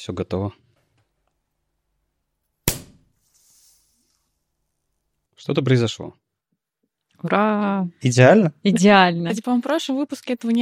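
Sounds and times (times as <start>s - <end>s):
speech: 0.0s - 0.6s, 5.4s - 6.2s, 7.2s - 10.6s
champagne cork popping: 2.7s - 3.8s.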